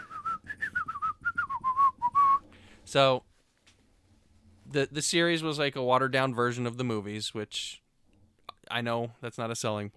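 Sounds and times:
person whistling a lively movie theme song: 0.0s - 2.5s
speech: 2.9s - 3.3s, 4.7s - 7.8s, 8.7s - 9.9s.

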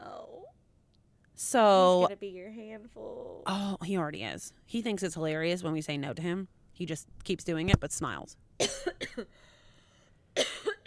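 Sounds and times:
speech: 1.4s - 9.5s
person coughing: 8.6s - 9.4s, 10.4s - 10.8s.

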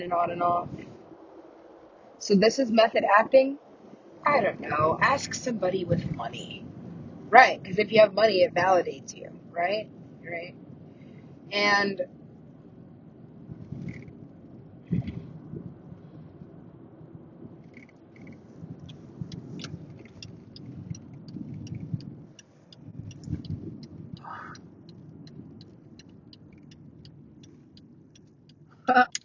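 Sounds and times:
speech: 0.0s - 0.8s, 2.2s - 3.6s, 4.2s - 6.7s, 7.3s - 10.6s, 11.5s - 12.2s
car interior low rumble while driving: 0.0s - 29.2s
light ticks: 17.6s - 29.2s.

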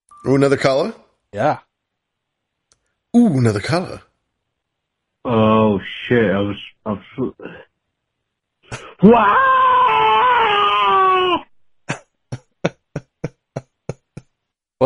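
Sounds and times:
speech: 0.2s - 1.7s, 3.1s - 4.1s, 5.2s - 7.7s, 8.7s - 9.6s
person screaming: 9.0s - 11.5s.

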